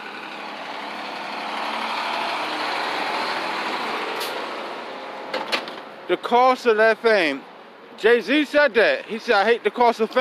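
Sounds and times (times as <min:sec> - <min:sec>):
truck engine roaring past: 0:00.0 - 0:10.1
air brakes hissing: 0:04.2 - 0:04.5
speech: 0:06.1 - 0:10.1.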